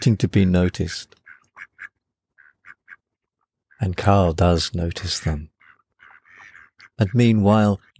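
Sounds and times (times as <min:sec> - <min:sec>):
speech: 0:00.0 - 0:01.2, 0:03.8 - 0:05.5, 0:07.0 - 0:07.9
ducks quacking: 0:01.0 - 0:04.2, 0:04.9 - 0:07.9.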